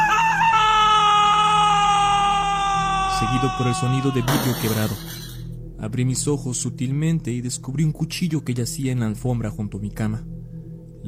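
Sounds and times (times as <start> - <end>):
high-pitched wailing scream: 0.0 - 4.9
speech: 3.2 - 10.4.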